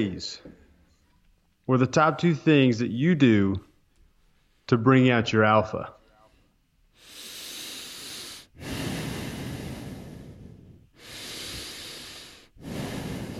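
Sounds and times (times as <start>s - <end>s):
speech: 0.0s - 0.5s, 1.7s - 3.7s, 4.7s - 6.0s
heavy raspy growling breaths blown into a microphone: 6.9s - 13.3s.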